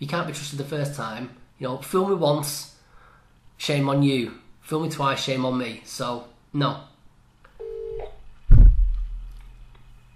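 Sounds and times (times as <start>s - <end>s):
speech: 0.0s - 2.7s, 3.6s - 6.9s
short electronic telephone dialing tone: 7.6s - 8.1s
loud booming thud: 8.5s - 9.2s.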